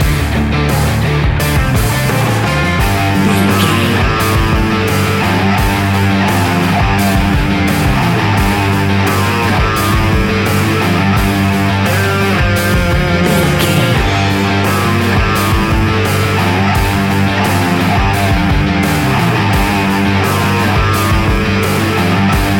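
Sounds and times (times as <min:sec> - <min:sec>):
rock guitars: 0:00.0 - 0:22.5
thumping rock bass lines: 0:01.7 - 0:05.2, 0:12.7 - 0:17.0.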